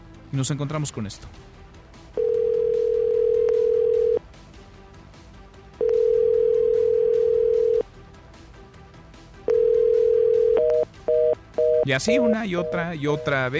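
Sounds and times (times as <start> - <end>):
speech: 0.3 - 1.6, 11.9 - 13.5
telephone line ringing out unanswered: 2.2 - 4.2, 5.8 - 7.8, 9.5 - 13.4.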